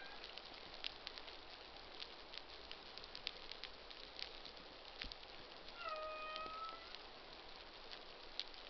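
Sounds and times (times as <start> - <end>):
constant underwater crackling and clicking: 0.0 - 8.6
humpback whale moaning harmonic social sound: 5.8 - 6.9.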